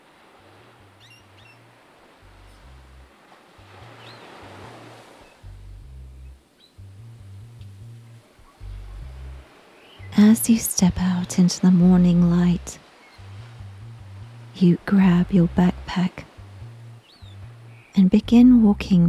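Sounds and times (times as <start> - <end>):
ocean waves breaking on shore: 0.0 - 5.6, 6.3 - 6.8, 7.9 - 19.0
faint bird chirps: 0.9 - 2.8, 3.9 - 4.5, 6.2 - 10.2, 12.9 - 14.5, 16.3 - 18.1
steady low droning tone: 0.9 - 19.0
speech: 10.2 - 12.8, 14.6 - 16.3, 18.0 - 19.0.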